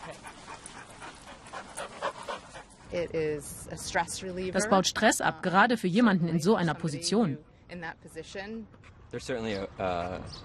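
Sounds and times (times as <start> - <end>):
dog panting: 0.0 - 3.1
speech: 2.9 - 10.4.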